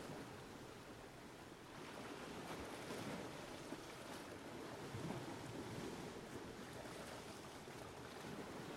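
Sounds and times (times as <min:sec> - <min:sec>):
sea waves rolling onto a deserted beach: 0:00.0 - 0:08.7
gusting wind buffeting the microphone: 0:01.7 - 0:08.7.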